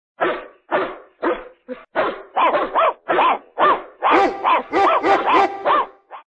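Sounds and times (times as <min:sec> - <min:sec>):
dog barking: 0:00.2 - 0:06.2.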